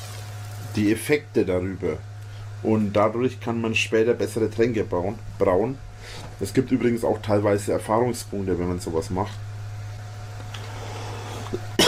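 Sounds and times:
low steady hum: 0.0 - 11.8
speech: 0.8 - 9.5
loud cough into a microphone, overdriving it: 11.6 - 11.8.

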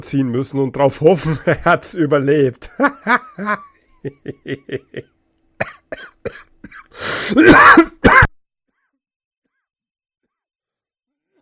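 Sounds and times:
speech: 0.0 - 8.2
laughter: 2.7 - 5.2
harsh throat clearing and hacking: 5.6 - 8.3
person coughing in short rhythmic bursts: 5.6 - 8.4.

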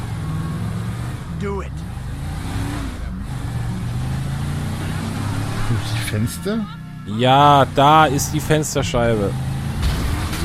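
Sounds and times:
car engine driving and revving in a video game: 0.0 - 10.4
speech: 1.4 - 1.9, 6.1 - 9.5.

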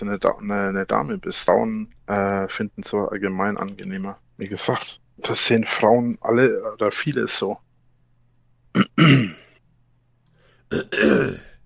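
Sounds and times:
speech: 0.0 - 7.6, 8.7 - 9.4, 10.7 - 11.5
throat clearing: 8.8 - 9.5, 10.7 - 11.6.

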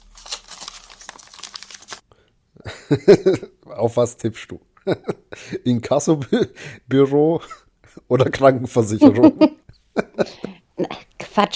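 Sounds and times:
paper letter envelope torn open by hand: 0.0 - 2.0
speech: 2.9 - 11.5.

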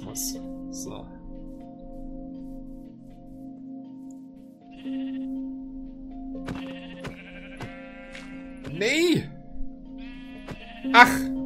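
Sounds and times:
speech: 0.2 - 1.2, 8.8 - 9.3, 10.8 - 11.3
video game sheep bleating as attacked: 4.7 - 5.4, 6.5 - 9.2, 10.0 - 11.3.

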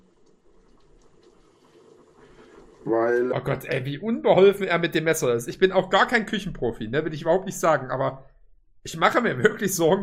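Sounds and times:
water boiling in a hot dog machine: 0.0 - 6.0
speech: 2.8 - 10.0.

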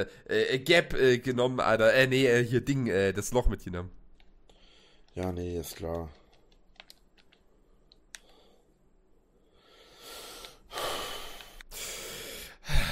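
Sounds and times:
speech: 0.0 - 4.0, 5.2 - 6.2
faint clicks: 4.1 - 8.4
heavy huffing breathing close to the mic: 4.5 - 5.1, 9.4 - 12.9.

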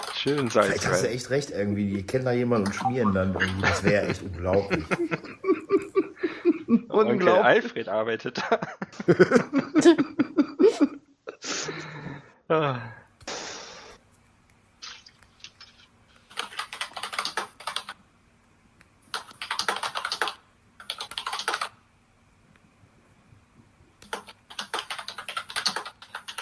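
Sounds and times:
typing on a computer keyboard: 0.0 - 0.6, 16.3 - 18.0, 19.1 - 21.8, 24.0 - 26.4
speech: 0.2 - 5.5, 7.0 - 11.0
laughter: 2.7 - 7.0, 8.3 - 11.6.

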